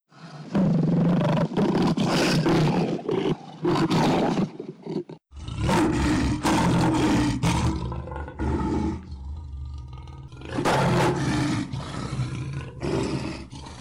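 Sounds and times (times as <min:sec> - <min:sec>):
lion roaring with low growling undertone: 0:00.2 - 0:13.7.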